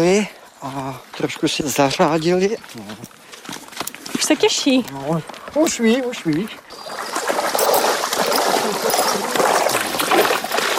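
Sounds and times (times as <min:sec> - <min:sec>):
speech: 0:00.0 - 0:03.2, 0:04.3 - 0:07.0
water spraying from a hose while showering a horse: 0:06.7 - 0:10.7.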